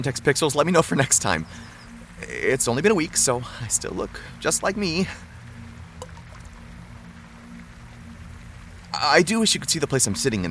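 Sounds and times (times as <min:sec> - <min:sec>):
speech: 0:00.0 - 0:05.3, 0:09.0 - 0:10.4
low rumbling hum: 0:00.0 - 0:10.4
water flowing from a nearby fountain: 0:00.0 - 0:10.4.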